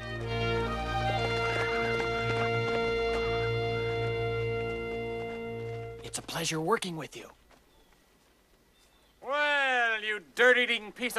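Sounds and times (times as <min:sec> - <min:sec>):
steady sustained tonal background: 0:00.0 - 0:06.1
horses' hooves clip-clopping: 0:00.0 - 0:08.9
speech: 0:06.1 - 0:07.4, 0:10.1 - 0:11.1.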